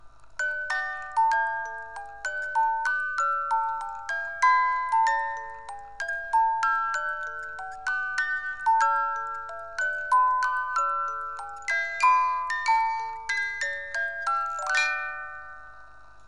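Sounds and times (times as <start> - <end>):
music box playing a waltz: 0.0 - 16.2.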